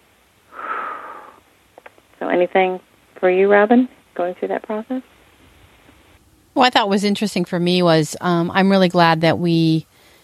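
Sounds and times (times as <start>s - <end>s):
deep breath: 0.5s - 1.4s, 9.9s - 10.2s
speech: 2.2s - 5.2s, 6.6s - 9.9s.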